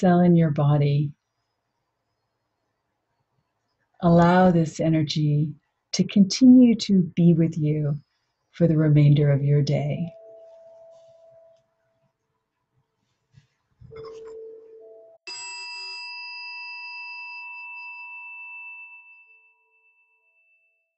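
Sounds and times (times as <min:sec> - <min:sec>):
speech: 0:00.0 - 0:01.2, 0:04.0 - 0:08.0, 0:08.6 - 0:10.2
meditation chime ringing at the end of a guided meditation: 0:13.9 - 0:20.9.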